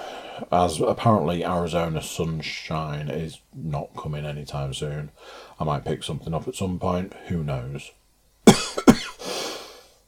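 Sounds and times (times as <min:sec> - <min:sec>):
speech: 0:00.4 - 0:08.0
person coughing with breathy rasp: 0:08.5 - 0:09.3.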